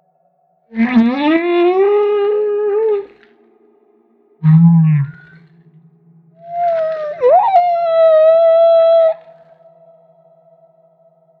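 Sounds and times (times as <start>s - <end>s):
humpback whale song unit tonal wail off Maui: 0.8s - 3.3s, 4.4s - 5.8s, 6.4s - 9.5s.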